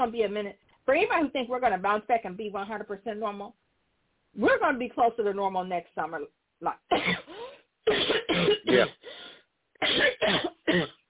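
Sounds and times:
speech: 0.0 - 3.6, 4.4 - 8.0, 8.6 - 9.2, 9.8 - 11.0
person coughing against a tickle in the throat: 6.9 - 9.0, 9.8 - 11.0
person clearing throat: 7.0 - 9.0, 9.8 - 11.0.

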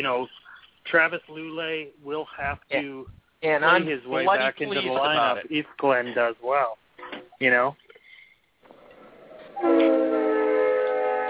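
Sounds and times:
speech: 0.0 - 7.8, 9.6 - 10.0
multi-tone train horn blaring: 9.5 - 11.2.

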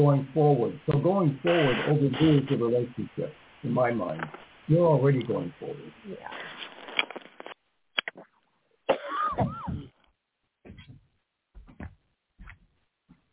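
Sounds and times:
speech: 0.0 - 7.2
woman coughing: 8.9 - 9.9.

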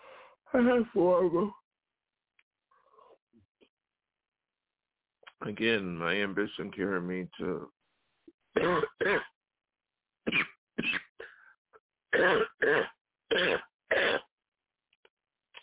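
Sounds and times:
faint breaths: 0.0 - 0.4
speech: 0.5 - 1.6, 5.4 - 7.8, 8.6 - 9.3, 12.2 - 14.2
person coughing: 8.6 - 9.3, 10.3 - 11.4, 12.2 - 14.3.

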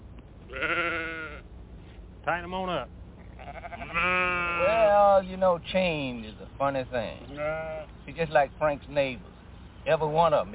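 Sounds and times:
faint outdoor noise: 0.0 - 10.5
single sheep bleating with a wavering nasal call: 0.5 - 1.5, 2.2 - 4.9, 7.2 - 7.9
speech: 2.3 - 3.0, 3.9 - 10.5.

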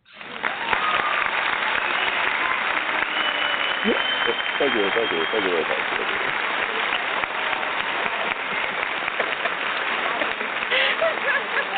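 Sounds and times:
applause from many hands: 0.0 - 11.7
laughter: 3.6 - 11.7
speech: 3.8 - 6.6.

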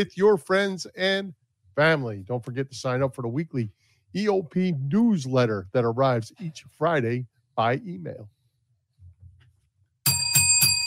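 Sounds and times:
speech: 0.0 - 8.4
bell ringing: 10.0 - 10.8.

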